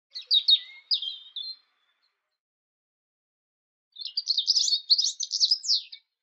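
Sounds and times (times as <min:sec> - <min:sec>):
robin: 0:00.1 - 0:02.4, 0:03.9 - 0:06.2.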